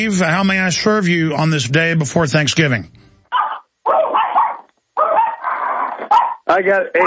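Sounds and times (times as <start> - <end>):
speech: 0.0 - 3.0, 6.6 - 7.0
Yorkie barking, yappy and high-pitched: 3.3 - 7.0.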